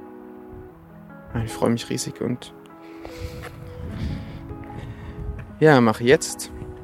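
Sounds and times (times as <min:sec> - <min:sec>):
speech: 0:01.4 - 0:03.6, 0:05.6 - 0:06.6
heavy wind buffeting the microphone on a beach: 0:03.0 - 0:06.8.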